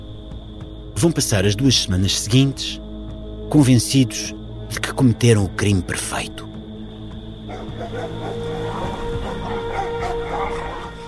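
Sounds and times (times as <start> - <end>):
speech: 1.0 - 2.8, 3.5 - 6.5
several dogs barking and yipping: 7.4 - 11.0.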